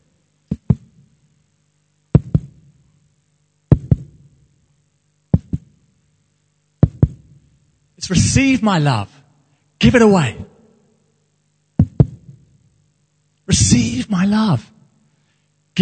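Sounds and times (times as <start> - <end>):
low hum: 0.0 - 15.8
slow deep heartbeat thumps: 0.5 - 1.0, 2.1 - 2.6, 3.7 - 4.2, 5.3 - 5.8, 6.8 - 7.3, 11.8 - 12.4
speech: 8.1 - 9.2, 9.8 - 10.5, 13.5 - 14.7.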